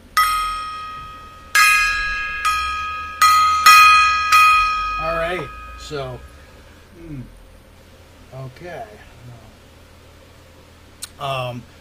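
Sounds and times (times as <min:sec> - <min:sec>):
gong being struck: 0:00.0 - 0:06.8
speech: 0:05.4 - 0:06.3, 0:07.0 - 0:07.4, 0:08.3 - 0:09.6, 0:11.2 - 0:11.7.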